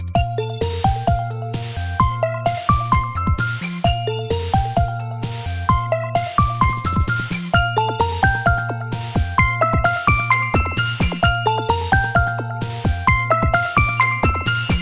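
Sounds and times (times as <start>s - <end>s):
Xperia phone alarm: 0.2s - 14.7s.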